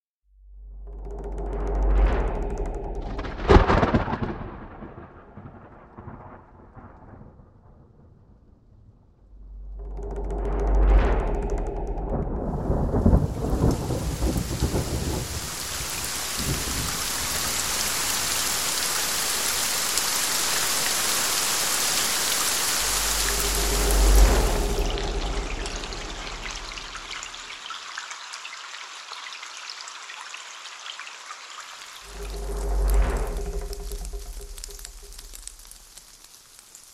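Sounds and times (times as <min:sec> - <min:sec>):
rain: 0:00.8 - 0:36.9
thunder: 0:01.0 - 0:18.6, 0:22.6 - 0:27.3, 0:32.0 - 0:36.3.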